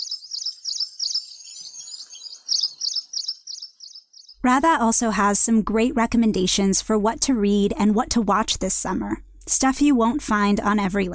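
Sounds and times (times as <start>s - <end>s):
city birds chirping in a busy chorus: 0.0s - 4.4s
speech: 4.4s - 11.1s.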